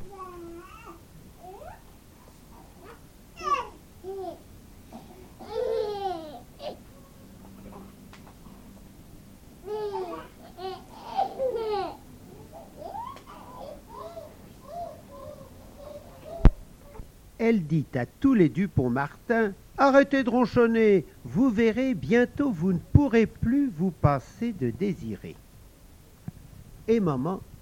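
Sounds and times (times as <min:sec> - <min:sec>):
baby babbling and cooing: 0:00.0 - 0:01.9, 0:02.5 - 0:07.9, 0:09.6 - 0:17.1
speech: 0:17.5 - 0:25.4, 0:26.9 - 0:27.6.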